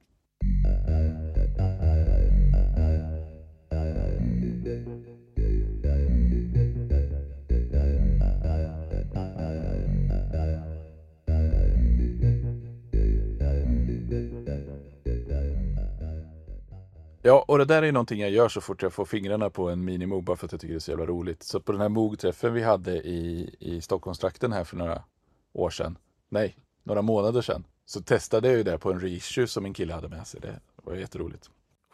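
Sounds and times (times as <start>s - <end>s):
Minimoog synth with heavy resonant filter playing vowel-like phrases: 0.4s - 17.1s
speech: 17.2s - 31.9s.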